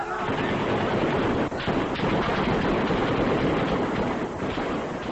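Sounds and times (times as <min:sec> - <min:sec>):
gunfire during a street uprising in a square: 0:00.2 - 0:05.1.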